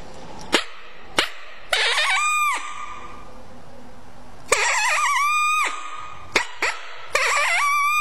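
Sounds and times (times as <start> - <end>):
mouth call imitating coyote barks and broken howl: 1.7 - 3.2, 4.5 - 7.9.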